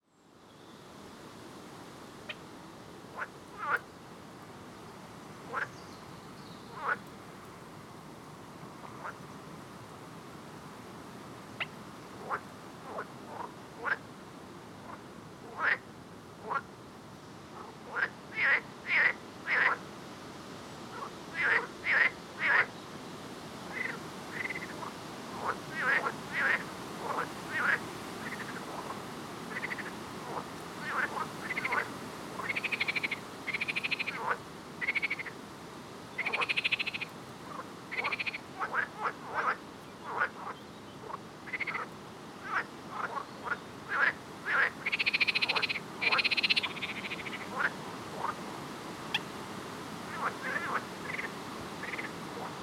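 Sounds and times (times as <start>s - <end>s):
frog: 2.2s - 2.5s, 3.1s - 3.9s, 5.5s - 5.8s, 6.7s - 7.1s, 8.8s - 9.2s, 11.6s - 14.1s, 14.8s - 16.7s, 17.5s - 19.8s, 20.9s - 22.8s, 23.7s - 35.4s, 36.1s - 48.4s, 49.1s - 49.3s, 50.1s - 52.6s.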